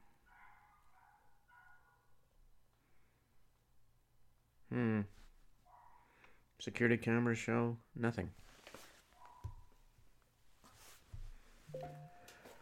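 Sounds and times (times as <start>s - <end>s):
guard dogs barking excitedly: 0.2s - 2.1s
speech: 6.6s - 8.4s.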